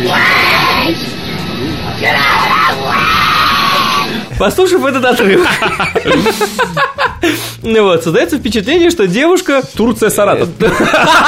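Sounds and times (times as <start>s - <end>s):
woman screaming on an airplane: 0.0s - 1.0s, 2.0s - 4.1s
steady hum: 0.0s - 7.0s
speech: 4.4s - 11.2s
laughter: 4.8s - 7.4s, 10.5s - 11.2s.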